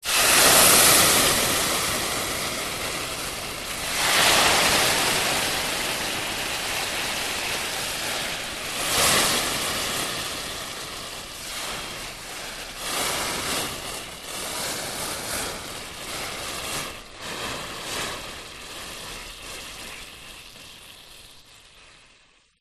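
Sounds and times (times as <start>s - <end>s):
water swirling: 0.0s - 14.2s
water pouring into pan: 0.0s - 14.3s, 16.8s - 22.6s
pan sizzling: 0.0s - 22.6s.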